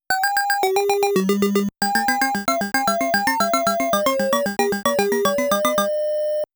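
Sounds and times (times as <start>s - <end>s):
game start music sound effect: 0.8s - 5.9s.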